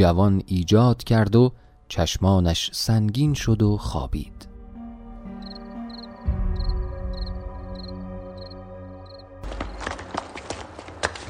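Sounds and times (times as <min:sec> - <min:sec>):
speech: 0:00.0 - 0:04.4
crickets chirping in steady pulses: 0:05.3 - 0:09.8
heavy hurried footsteps of soldiers: 0:09.4 - 0:11.2.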